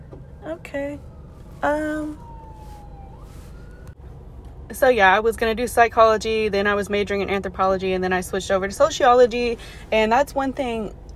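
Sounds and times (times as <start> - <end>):
ambulance siren wailing: 0.0 - 4.4
constant low traffic rumble: 0.0 - 11.1
speech: 0.5 - 2.3, 4.7 - 11.1.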